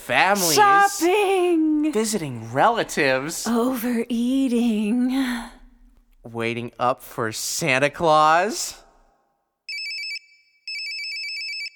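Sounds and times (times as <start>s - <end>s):
speech: 0.1s - 5.6s, 6.2s - 8.8s
cell phone ringtone trilling: 9.7s - 11.7s.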